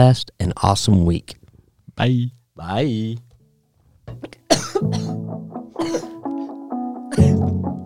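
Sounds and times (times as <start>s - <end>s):
speech: 0.0s - 1.4s, 2.0s - 3.3s, 4.1s - 5.2s
harsh coughs: 4.5s - 5.2s, 5.8s - 6.2s, 7.1s - 7.6s.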